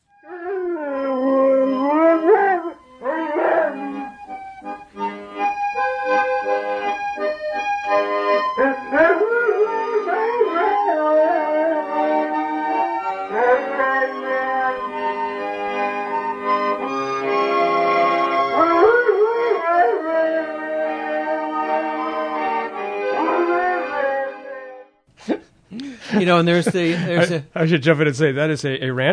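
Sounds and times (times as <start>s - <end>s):
instrumental music with steady tones: 0.0s - 25.1s
dog howling along to music: 0.3s - 4.1s, 8.6s - 15.1s, 18.5s - 24.7s
laughter: 25.8s - 27.4s
speech: 26.4s - 29.1s.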